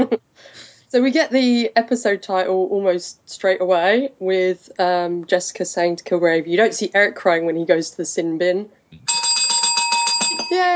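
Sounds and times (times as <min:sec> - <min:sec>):
speech: 0:00.9 - 0:09.2
buzzing electronic doorbell chime: 0:09.1 - 0:10.7.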